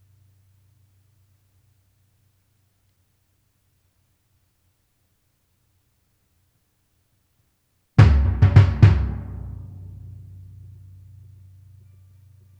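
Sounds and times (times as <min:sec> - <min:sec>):
timpani: 0:08.0 - 0:12.4.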